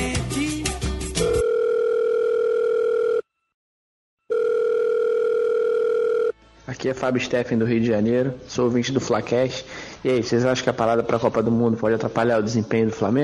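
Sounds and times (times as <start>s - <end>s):
busy music-like sound: 0.0s - 1.4s, 6.4s - 8.4s
telephone ringing: 1.2s - 3.3s, 4.3s - 6.4s
speech: 6.8s - 13.2s.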